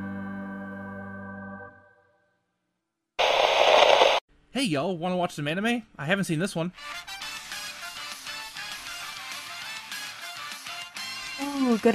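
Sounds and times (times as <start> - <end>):
loud hissing burst of radio static: 3.2 - 4.2
speech: 4.6 - 7.1, 11.7 - 11.9.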